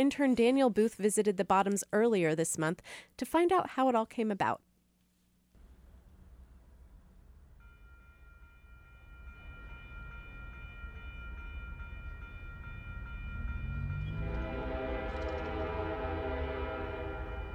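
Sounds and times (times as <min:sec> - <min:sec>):
speech: 0:00.0 - 0:04.7
train rumbling past: 0:05.9 - 0:17.5
train horn blaring: 0:13.7 - 0:17.5.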